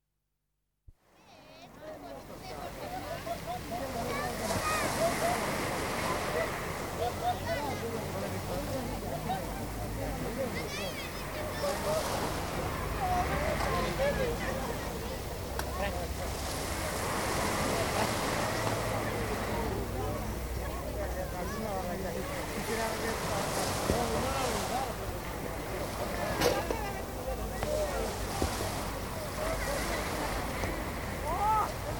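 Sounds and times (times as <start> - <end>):
sea at a beach: 0.9 - 31.9
crowd on a beach: 1.0 - 31.9.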